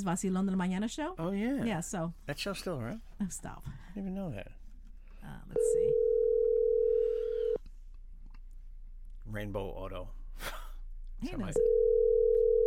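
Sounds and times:
speech: 0:00.0 - 0:04.6, 0:05.2 - 0:06.0, 0:09.3 - 0:10.6, 0:11.2 - 0:11.8
electronic phone ringback tone on an outgoing call: 0:05.6 - 0:07.6, 0:11.6 - 0:12.6.

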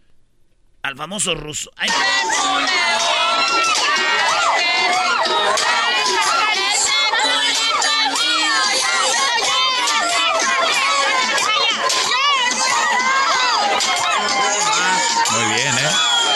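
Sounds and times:
speech: 0:00.9 - 0:04.3, 0:13.9 - 0:16.3
reggaeton music: 0:01.0 - 0:11.0, 0:14.2 - 0:16.3
loud dense crowd shouting, whooping and cheering at a funeral in a cemetery: 0:01.8 - 0:16.3.

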